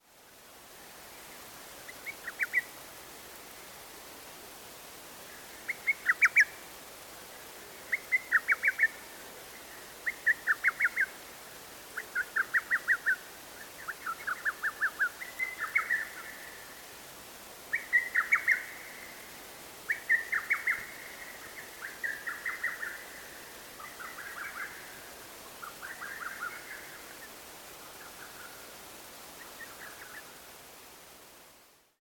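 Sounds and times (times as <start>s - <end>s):
hototogisu bird: 1.9s - 2.7s, 5.7s - 6.6s, 7.9s - 9.0s, 10.0s - 11.2s, 12.0s - 16.6s, 17.7s - 19.2s, 19.9s - 27.3s.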